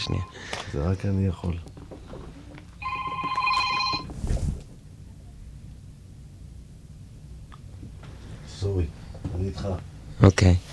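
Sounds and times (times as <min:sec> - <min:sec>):
telephone ringing: 0:00.0 - 0:00.5, 0:02.8 - 0:04.1
speech: 0:00.0 - 0:01.8, 0:08.7 - 0:10.7.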